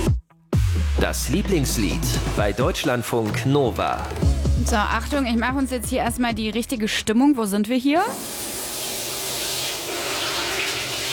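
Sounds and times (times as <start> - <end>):
speech: 1.0 - 8.5
running shower water spraying: 8.1 - 11.1.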